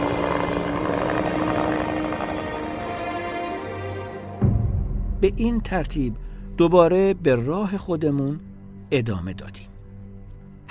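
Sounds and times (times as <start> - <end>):
helicopters flying overhead: 0.0 - 3.8
speech: 5.2 - 9.7.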